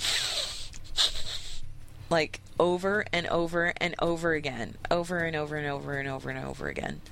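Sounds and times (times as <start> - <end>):
female worgen video game character sniffing: 0.0 - 1.7
speech: 2.1 - 7.0.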